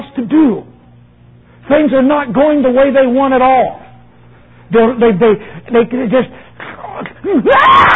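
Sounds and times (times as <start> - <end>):
speech: 0.2 - 0.7, 1.7 - 3.8, 4.7 - 6.4, 7.2 - 7.9
adult voice mimicking a child's screaming tantrum: 7.3 - 7.9.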